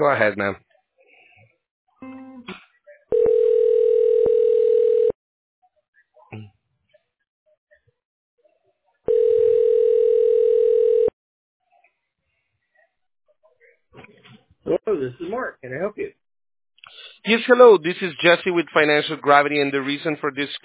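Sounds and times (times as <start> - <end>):
speech: 0.0 - 0.7, 6.3 - 6.5, 14.0 - 16.2, 17.2 - 20.6
telephone ring tones during transfer to voicemail: 3.1 - 5.2, 9.1 - 11.2.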